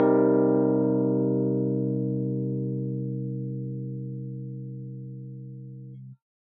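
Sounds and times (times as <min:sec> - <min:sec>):
open C minor 7 chord: 0:00.0 - 0:06.0.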